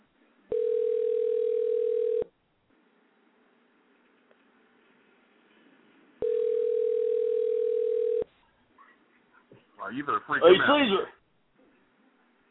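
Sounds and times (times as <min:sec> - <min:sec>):
telephone tones heard while dialing a number: 0:00.5 - 0:02.3, 0:06.2 - 0:08.3
speech: 0:09.9 - 0:11.2.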